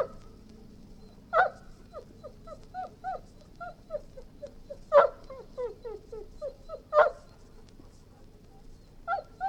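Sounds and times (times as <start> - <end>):
golden retriever whining in short high wavering whimpers: 1.0 - 7.4, 9.0 - 9.4
golden retriever abrupt barks: 1.3 - 1.6, 4.9 - 5.3, 6.9 - 7.3, 9.1 - 9.4.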